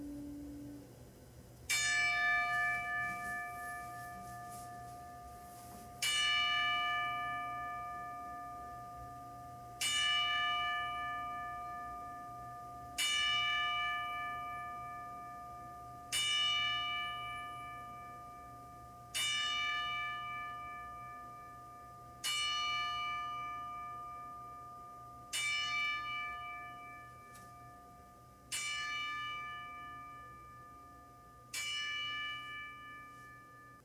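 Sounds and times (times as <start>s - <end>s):
single clear bell tolling in a ten-bell salute: 1.7s - 33.8s.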